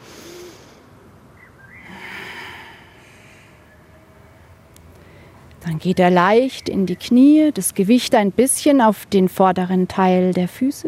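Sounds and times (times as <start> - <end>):
slow deep breath into the belly and out: 0.0 - 0.9, 1.8 - 4.4
speech: 5.6 - 10.8.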